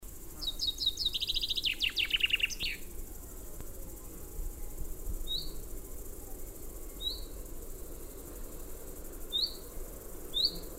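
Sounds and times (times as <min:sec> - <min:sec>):
soft background noise: 0:00.1 - 0:10.7
common chaffinch Fringilla coelebs song with descending trilled phrase: 0:00.3 - 0:03.0, 0:04.5 - 0:08.4, 0:09.2 - 0:10.7.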